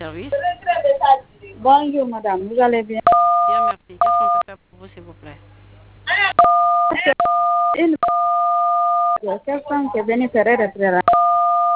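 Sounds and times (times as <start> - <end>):
speech: 0.0 - 0.4, 1.6 - 3.2, 9.4 - 11.7
telephone keypad dual-pitched tones over a phone line: 3.0 - 4.5, 6.4 - 9.2, 11.1 - 11.7.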